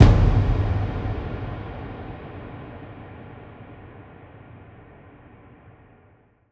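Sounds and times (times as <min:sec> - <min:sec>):
orchestra hit: 0:00.0 - 0:02.9.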